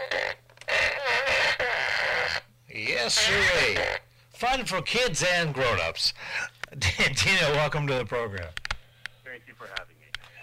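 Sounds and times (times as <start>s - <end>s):
toy fart blaster making buzzy squelchy raspberry tones: 0.0s - 2.5s, 3.2s - 4.1s
speech: 3.0s - 8.6s.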